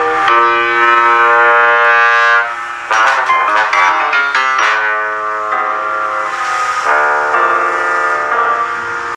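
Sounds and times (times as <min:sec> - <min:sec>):
bassoon: 0:00.0 - 0:04.9
piano: 0:00.0 - 0:09.1.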